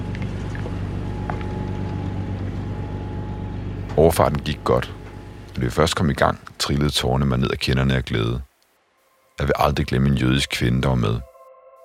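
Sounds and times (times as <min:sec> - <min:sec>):
large fishing boat engine chugging: 0:00.0 - 0:07.0
speech: 0:04.0 - 0:05.0, 0:05.6 - 0:08.5, 0:09.4 - 0:11.3.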